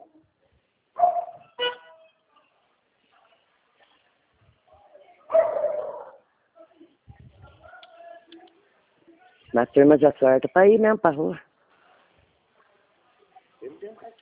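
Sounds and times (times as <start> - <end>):
dogs barking: 1.0 - 1.6, 5.3 - 6.2
speech: 9.6 - 11.4.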